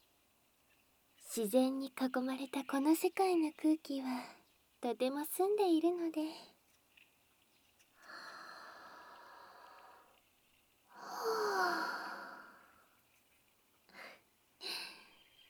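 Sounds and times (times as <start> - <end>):
speech: 1.4 - 6.5
person taking a deep breath outdoors: 8.0 - 10.1, 10.9 - 12.8.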